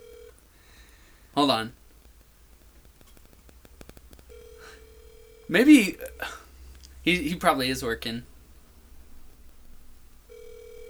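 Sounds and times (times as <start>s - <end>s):
ringback tone on an outgoing telephone call: 0.0s - 0.4s, 4.3s - 6.5s, 10.3s - 10.8s
low noisy hiss: 0.0s - 10.8s
speech: 1.4s - 1.8s, 5.5s - 6.4s, 7.0s - 8.3s.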